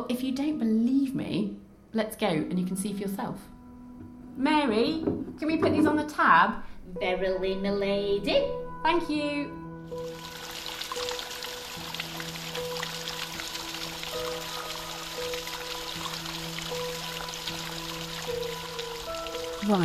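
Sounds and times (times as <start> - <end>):
speech: 0.0 - 3.6, 4.4 - 10.2, 19.7 - 19.8
water trickling and splashing over a rocky cave ledge: 9.9 - 19.8.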